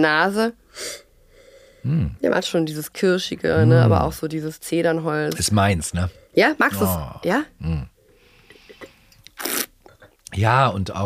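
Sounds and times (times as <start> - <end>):
speech: 0.0 - 1.0, 1.8 - 7.9, 10.4 - 11.0
slurping red wine to aerate it: 8.5 - 9.7.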